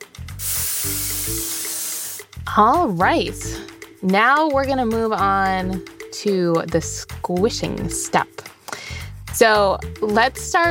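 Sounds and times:
vegetable oil cooking spray hissing from an aerosol can: 0:00.4 - 0:02.3
speech: 0:02.5 - 0:08.4, 0:09.4 - 0:10.6.

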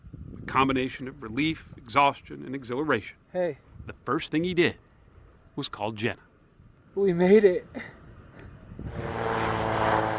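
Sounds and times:
speech: 0:00.5 - 0:04.8, 0:05.6 - 0:06.3, 0:07.0 - 0:08.0
small propeller plane flying to a glacier at Denali: 0:07.8 - 0:10.1.

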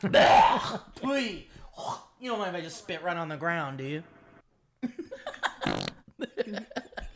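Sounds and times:
speech: 0:00.0 - 0:04.2, 0:04.8 - 0:05.1, 0:06.2 - 0:07.0
loud brief fart: 0:05.4 - 0:06.1.

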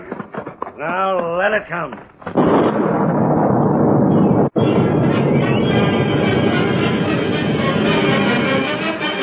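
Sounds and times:
speech: 0:00.8 - 0:03.2
explosion blasting rock and earth from a hillside: 0:02.1 - 0:09.1.

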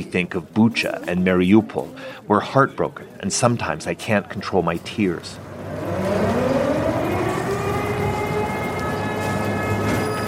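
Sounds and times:
dense rumble of city or traffic noise: 0:00.0 - 0:10.2
speech: 0:00.1 - 0:06.0
air raid siren wailing: 0:05.4 - 0:10.2.

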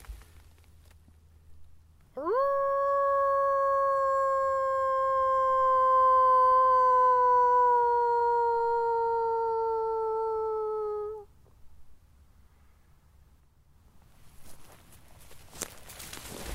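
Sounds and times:
faint rustling in a forest in Germany: 0:00.0 - 0:01.8, 0:14.0 - 0:16.5
person in a forest in Germany imitating a wolf howl: 0:02.2 - 0:11.3.

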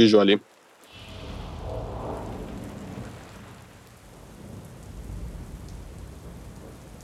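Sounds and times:
speech: 0:00.0 - 0:00.5
rain splattering against windows: 0:00.0 - 0:07.0
low rumble of thunder: 0:00.9 - 0:07.0.

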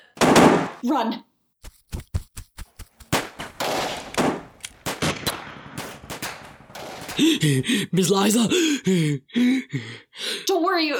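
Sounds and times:
speech: 0:00.8 - 0:01.3, 0:07.2 - 0:10.9
gunfire during a getaway: 0:03.1 - 0:07.5.

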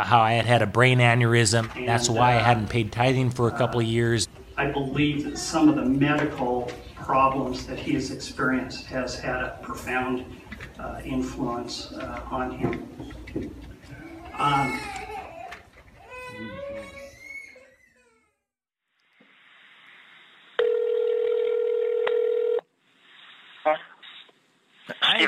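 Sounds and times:
speech: 0:00.0 - 0:13.7, 0:14.4 - 0:15.0
telephone line tone: 0:20.6 - 0:22.6.

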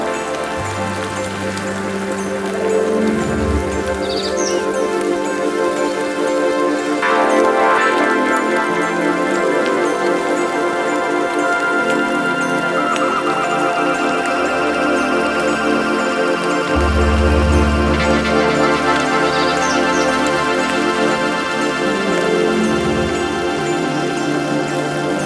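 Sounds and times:
droning improvised hardware synth tones: 0:00.0 - 0:25.2
steady rain hissing: 0:00.0 - 0:25.2
brief bright chirps: 0:16.7 - 0:24.8.

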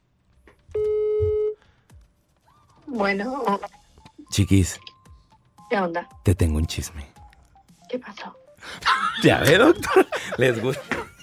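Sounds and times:
ringback tone on an outgoing phone call: 0:00.7 - 0:01.6
speech: 0:02.9 - 0:04.9, 0:05.7 - 0:07.2, 0:07.9 - 0:11.0
laughter: 0:08.7 - 0:11.2.

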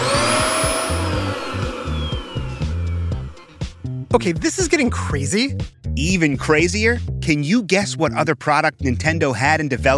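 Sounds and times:
vacuum cleaner motor roaring with a high whine: 0:00.0 - 0:04.0
speech: 0:04.1 - 0:09.9.

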